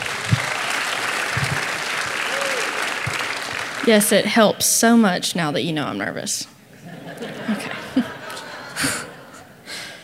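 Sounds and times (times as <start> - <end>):
people whooping: 0.0 - 3.8
audience applauding: 0.0 - 4.3
speech: 3.9 - 6.5
laughter: 6.8 - 9.6.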